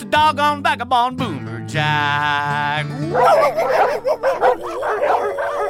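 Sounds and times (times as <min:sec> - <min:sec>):
speech: 0:00.2 - 0:04.3
dogs on a street barking and yipping: 0:03.0 - 0:05.6.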